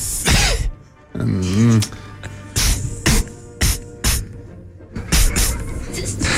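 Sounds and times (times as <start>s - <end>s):
person voicing a snake's cough with breathy hisses: 0.0s - 0.4s, 1.4s - 4.4s, 5.1s - 5.7s
throaty groan: 1.1s - 3.3s.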